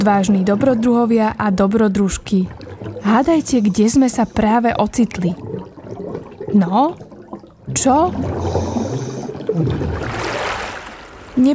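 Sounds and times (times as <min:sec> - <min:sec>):
speech: 0:00.0 - 0:05.5, 0:06.5 - 0:07.1, 0:07.7 - 0:08.6, 0:09.6 - 0:10.2
rumbling underwater gurgles while a woman is under the water: 0:00.0 - 0:10.2
sloshing and dripping water: 0:00.0 - 0:11.5
splash of a woman surfacing from water: 0:09.7 - 0:11.4.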